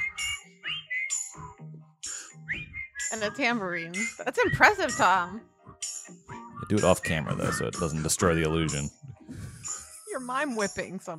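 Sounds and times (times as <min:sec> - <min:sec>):
whistling through a voice filter: 0:00.0 - 0:01.3, 0:02.1 - 0:05.1, 0:06.6 - 0:10.2
speech: 0:03.1 - 0:05.5, 0:06.7 - 0:09.0, 0:10.3 - 0:11.1.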